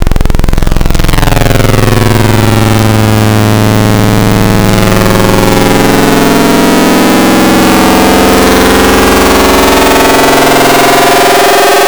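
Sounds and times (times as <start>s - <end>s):
lo-fi FM saw synth: 0.0s - 11.8s.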